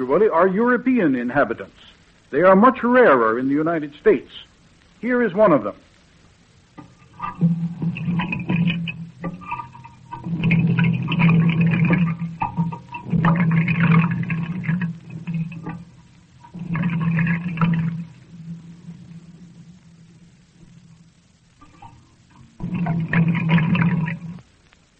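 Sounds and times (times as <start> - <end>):
speech: 0.0 - 5.9, 6.8 - 8.3
water gurgling and sloshing through an ordinary pipe: 6.2 - 24.6.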